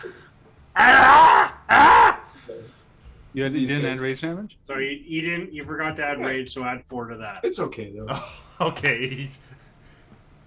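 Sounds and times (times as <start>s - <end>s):
speech: 0.8s - 1.5s, 3.4s - 9.6s
stumbling man giving rough gurgling screams: 0.8s - 2.3s.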